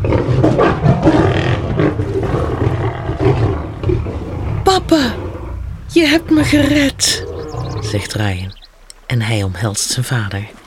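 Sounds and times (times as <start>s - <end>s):
lion roaring loudly with a deep rumbling growl: 0.0s - 8.2s
speech: 4.9s - 5.2s, 6.0s - 7.3s, 7.9s - 10.6s.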